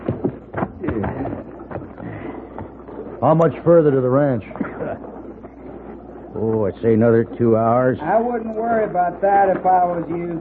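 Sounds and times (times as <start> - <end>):
ridden horse hooves clip-clopping at a walking pace: 0.0 - 10.3
faint murmuring voices: 0.1 - 10.3
speech: 3.2 - 4.6, 6.4 - 10.3.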